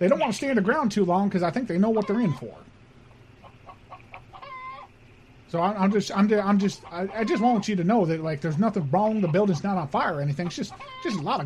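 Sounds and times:
speech: 0.0 - 2.7, 5.5 - 11.4
chickens clucking and squawking indoors: 1.8 - 2.6, 3.2 - 11.4.

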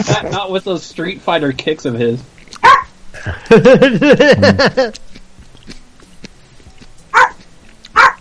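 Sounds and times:
laughter: 0.0 - 0.5, 3.2 - 5.0
speech: 0.0 - 5.1
dog barking in a played video: 2.6 - 2.9, 7.1 - 8.2.

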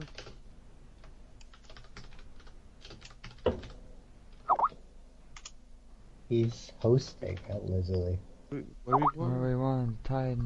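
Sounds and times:
typing on a computer keyboard: 0.0 - 0.4, 1.4 - 3.8
speech: 6.3 - 10.4.

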